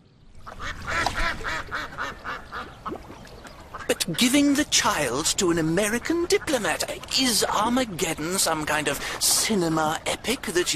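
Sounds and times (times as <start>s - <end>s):
flock of ducks quacking: 0.4s - 10.7s
speech: 4.0s - 10.7s.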